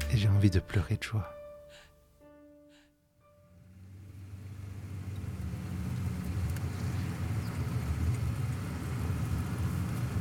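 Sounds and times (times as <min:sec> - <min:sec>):
speech: 0:00.1 - 0:01.4
faint road noise from traffic: 0:03.4 - 0:10.1
car engine idling in traffic: 0:03.6 - 0:10.1.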